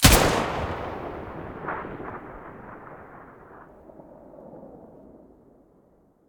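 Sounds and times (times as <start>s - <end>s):
AUG gun muzzle blast: 0.0s - 3.3s.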